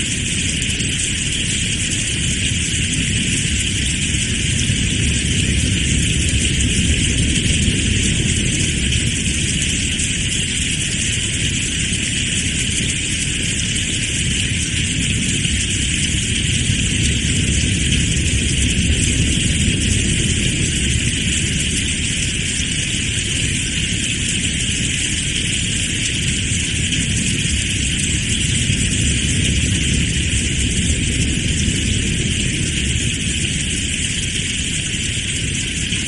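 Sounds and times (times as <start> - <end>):
steady rain hissing: 0.0 - 36.0
strong wind roaring in gusts: 2.9 - 11.3, 14.8 - 23.5, 26.8 - 36.0.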